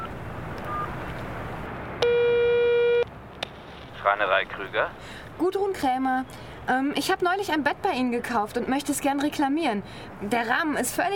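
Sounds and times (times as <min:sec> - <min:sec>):
telephone ringing tone through a held handset: 0:02.0 - 0:03.1
speech: 0:04.1 - 0:11.1.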